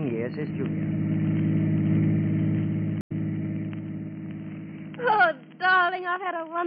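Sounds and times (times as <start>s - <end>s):
chauffeur-driven car engine running: 0.0s - 6.0s
speech: 0.3s - 1.3s, 6.0s - 6.6s.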